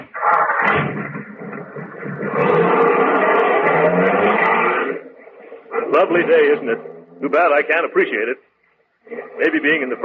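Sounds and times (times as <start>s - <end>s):
car engine roaring and revving as the car pulls away: 1.1s - 7.4s
speech: 6.0s - 10.0s.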